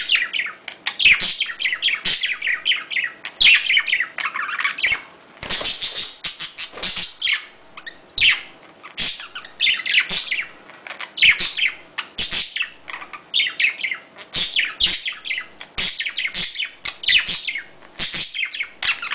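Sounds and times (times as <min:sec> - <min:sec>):
budgerigar twittering: 0:00.0 - 0:19.1.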